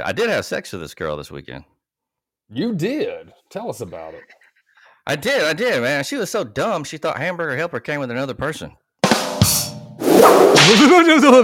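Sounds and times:
speech: 0.0 - 1.7, 2.5 - 4.4, 5.0 - 8.8, 9.4 - 11.4
whip swishing through air: 10.0 - 10.9
loud whip crack: 10.0 - 11.1.

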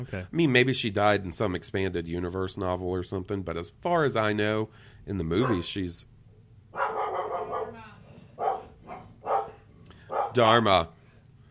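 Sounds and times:
speech: 0.0 - 6.1, 10.4 - 11.0
dog barking at someone mowing a yard: 5.4 - 5.7, 6.8 - 7.8, 8.4 - 10.4.

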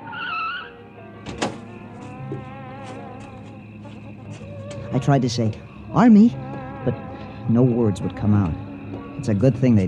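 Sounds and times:
car rolling up with engine humming: 1.0 - 9.2
speech: 2.3 - 2.6, 4.9 - 8.6, 9.2 - 9.8.

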